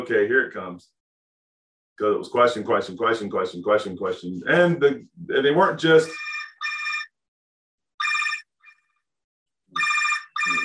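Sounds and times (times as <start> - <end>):
speech: 0.0 - 1.0, 2.0 - 6.3
telephone ringing in electronic bursts: 6.1 - 7.2, 8.0 - 8.8, 9.8 - 10.6.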